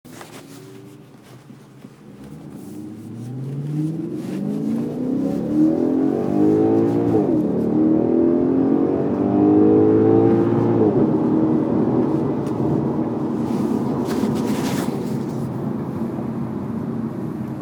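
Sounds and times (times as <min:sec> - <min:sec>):
Audi S5 car exhaust: 0:00.3 - 0:17.6.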